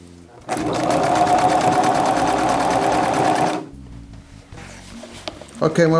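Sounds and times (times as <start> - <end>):
sewing machine stitching along the edge of a pant leg: 0.4 - 3.7.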